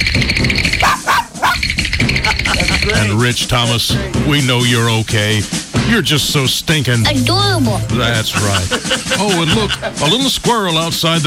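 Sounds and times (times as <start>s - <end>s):
dog barking in short yipping bursts: 0.8s - 1.6s
laughter: 2.3s - 3.2s, 8.0s - 10.3s
speech: 3.1s - 11.2s.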